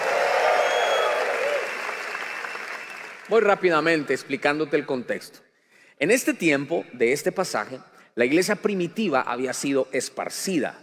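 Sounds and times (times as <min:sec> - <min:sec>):
whoops and cheering voices: 0:00.0 - 0:03.2
congregation clapping: 0:00.0 - 0:04.0
speech: 0:03.3 - 0:05.4, 0:06.0 - 0:10.8.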